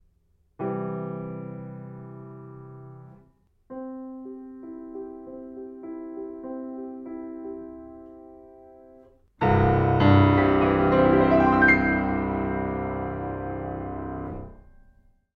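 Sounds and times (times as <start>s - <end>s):
C major chord: 9.8s - 14.5s.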